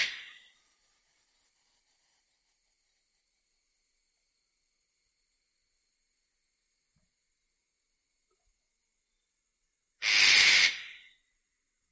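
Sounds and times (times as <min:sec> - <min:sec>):
eclectus parrot raspy hissing shriek: 0:00.0 - 0:00.4, 0:10.0 - 0:11.2.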